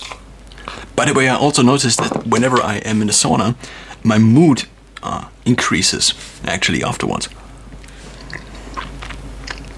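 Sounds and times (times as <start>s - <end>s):
speech: 1.0s - 7.4s
chewing and biting on a chocolate peanut and mint protein snack: 7.8s - 9.7s.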